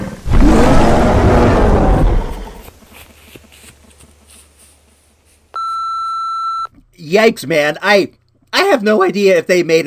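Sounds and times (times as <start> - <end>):
loud deep bellowing creature roar in the woods: 0.0 - 2.6
steady electronic phone hang-up beep: 5.6 - 6.7
speech: 7.1 - 9.8.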